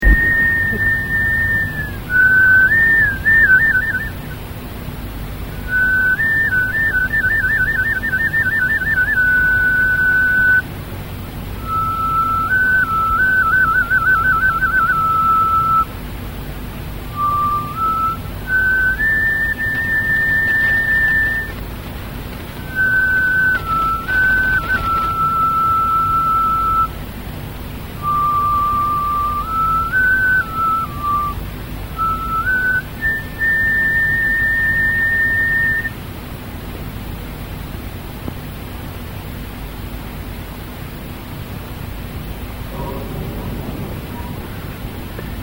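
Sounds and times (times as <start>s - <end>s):
flutes: 0.0s - 4.4s, 5.5s - 10.7s, 11.5s - 16.0s, 17.1s - 27.1s, 28.0s - 36.0s, 42.7s - 45.4s.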